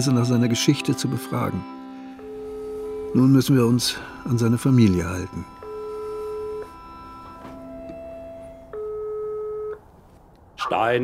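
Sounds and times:
speech: 0.0 - 1.8, 3.1 - 5.6, 10.7 - 11.0
telephone ringback tone of an outgoing call: 2.0 - 9.8.

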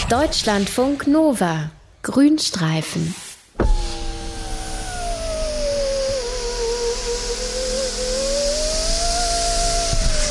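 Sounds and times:
speech: 0.1 - 3.8
car electric window motor whining: 3.6 - 10.2.

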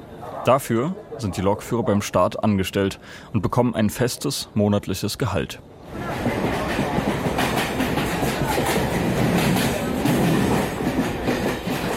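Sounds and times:
speech: 0.4 - 6.3
commuter train rattling along the tracks heard from inside: 5.8 - 11.9.

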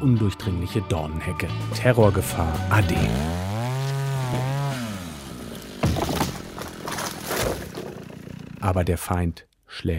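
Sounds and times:
speech: 0.0 - 3.5, 8.6 - 9.9
chainsaw engine revving: 2.3 - 9.0.

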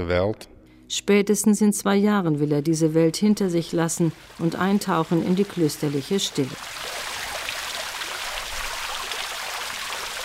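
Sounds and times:
speech: 0.0 - 7.0
garden fountain splashing: 3.6 - 10.2.

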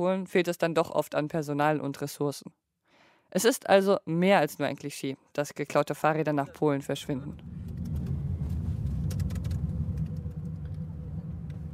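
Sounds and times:
speech: 0.0 - 2.6, 3.3 - 7.7
car interior engine and road drone while driving: 7.2 - 11.7.

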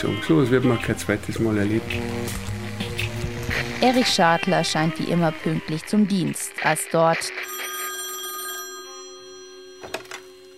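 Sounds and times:
speech: 0.0 - 2.5, 3.6 - 7.4
telephone bell ringing: 7.4 - 10.5.

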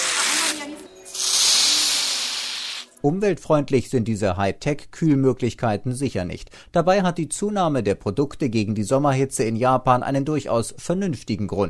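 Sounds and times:
ice-cold air sprayed from a can onto the scalp: 0.0 - 2.9
speech: 3.0 - 11.6.

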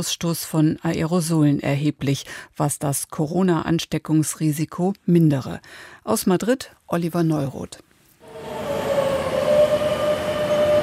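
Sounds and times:
speech: 0.0 - 7.9
metro train arriving at an underground station in Madrid: 8.2 - 10.8.

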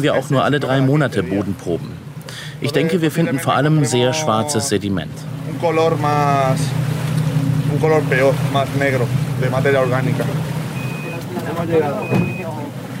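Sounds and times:
speech: 0.0 - 6.8, 7.7 - 10.5, 11.6 - 12.7
boat engine droning on a lagoon: 0.0 - 12.9
short electronic beeps: 10.8 - 11.2, 12.0 - 12.5.

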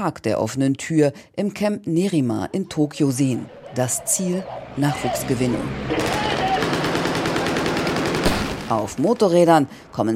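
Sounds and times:
speech: 0.0 - 6.5, 8.7 - 10.1
rapid gunfire from Japan Self-Defense Forces soldiers in a demonstration at an army camp in Tokyo: 5.9 - 9.4.

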